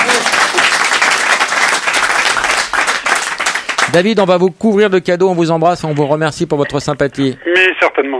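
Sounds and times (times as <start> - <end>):
studio audience applause: 0.0 - 4.0
speech: 3.9 - 8.1.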